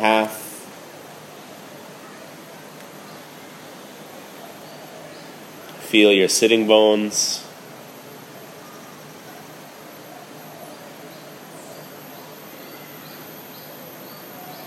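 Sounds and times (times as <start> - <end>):
dense steady outdoor drone of cicadas: 0.0 - 14.6
faint brief bird chirps: 3.0 - 5.8, 7.8 - 14.6
speech: 5.9 - 7.5.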